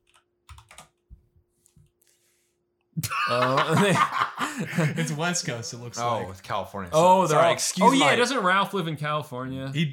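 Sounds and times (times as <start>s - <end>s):
typing a search term on a computer keyboard: 0.0s - 1.0s
laughter: 3.0s - 5.6s
speech: 3.3s - 9.9s
person speaking loudly: 5.0s - 8.8s.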